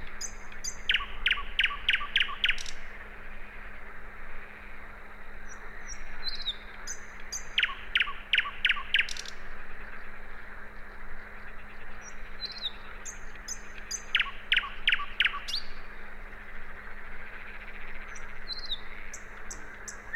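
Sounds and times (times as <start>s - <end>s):
common nightingale Luscinia megarhynchos singing: 0.0s - 2.8s, 5.5s - 9.4s, 12.0s - 15.8s, 18.0s - 20.1s
continuous low hum: 0.0s - 20.1s.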